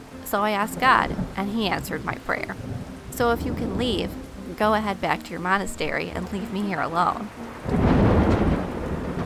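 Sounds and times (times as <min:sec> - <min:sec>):
steady heavy rain in a severe thunderstorm: 0:00.0 - 0:09.2
speech: 0:00.3 - 0:07.8
deep rolling thunder in a severe thunderstorm: 0:00.8 - 0:04.9, 0:07.3 - 0:09.2.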